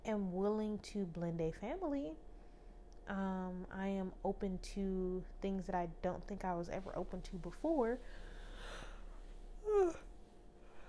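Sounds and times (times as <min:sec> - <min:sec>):
speech: 0:00.0 - 0:02.3, 0:03.1 - 0:08.9, 0:09.6 - 0:10.1
quiet hum: 0:00.0 - 0:10.8
yawn: 0:09.6 - 0:10.1.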